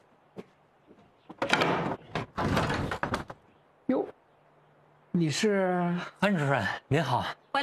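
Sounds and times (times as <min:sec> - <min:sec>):
front door unlatched and swung open with rattling, scraping noise: 0:01.3 - 0:03.5
speech: 0:05.2 - 0:07.4.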